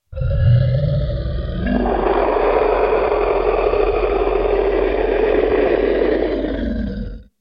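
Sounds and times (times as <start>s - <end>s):
dragon roar: 0.1s - 7.3s.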